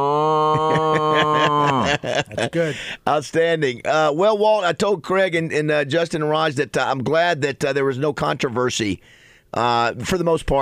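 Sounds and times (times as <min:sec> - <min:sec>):
person imitating a cow mooing: 0:00.0 - 0:02.0
laughter: 0:00.3 - 0:02.8
speech: 0:01.2 - 0:10.6.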